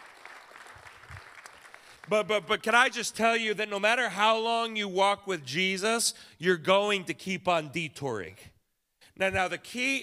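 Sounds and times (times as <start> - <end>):
audience applause: 0.0 - 2.2
speech: 2.1 - 8.5, 9.2 - 10.0.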